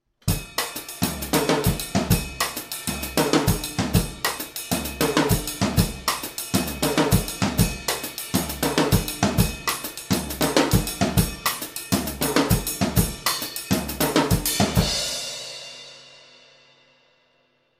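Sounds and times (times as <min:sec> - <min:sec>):
drummer playing essential rhythms: 0:00.2 - 0:16.1.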